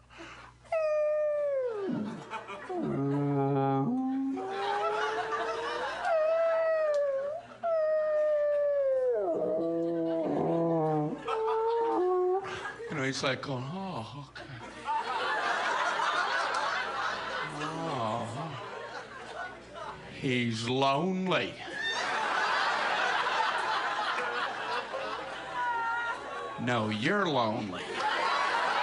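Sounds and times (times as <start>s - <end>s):
long mournful whale song cries: 0.8s - 12.5s
laughter: 1.6s - 12.9s, 14.3s - 20.2s, 21.7s - 26.6s, 27.8s - 28.8s
speech: 13.2s - 14.5s, 20.2s - 21.7s, 26.6s - 27.9s.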